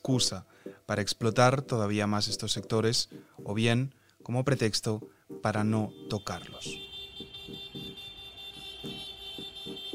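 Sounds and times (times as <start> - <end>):
speech: 0.0 - 6.9
car, motorbike and bicycle horns honking in protest in Madrid: 5.8 - 9.9.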